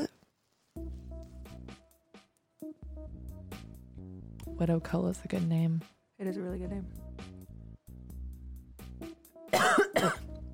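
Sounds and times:
speech: 0:04.6 - 0:07.1
person coughing after smoking from a pipe: 0:09.5 - 0:10.3.

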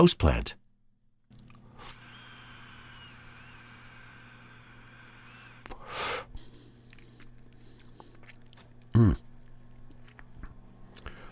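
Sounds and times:
speech: 0:00.0 - 0:00.6, 0:09.0 - 0:09.2
breathy draw of air inhaling a puff from a vaporizer: 0:05.5 - 0:08.2, 0:11.0 - 0:11.2.

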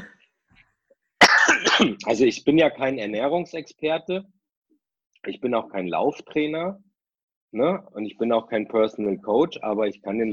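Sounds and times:
person coughing loudly and raspily: 0:01.2 - 0:02.0
speech: 0:01.8 - 0:04.4, 0:05.2 - 0:06.8, 0:07.5 - 0:10.3.

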